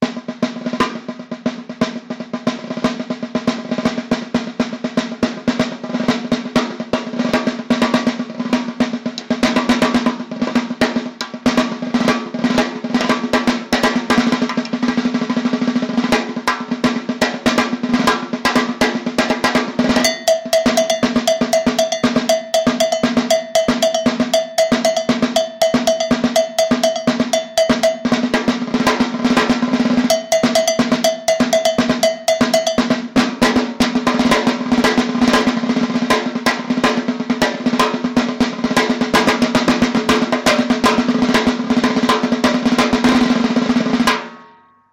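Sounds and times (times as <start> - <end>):
batucada drums: 0.0 - 44.5
cowbell: 19.9 - 28.6, 30.0 - 33.1.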